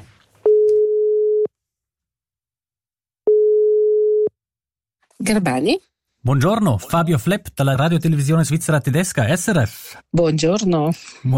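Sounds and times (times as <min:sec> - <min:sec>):
telephone ringing tone while placing a call to a Swiss municipal office: 0:00.5 - 0:01.5, 0:03.3 - 0:04.3
speech: 0:05.2 - 0:11.3.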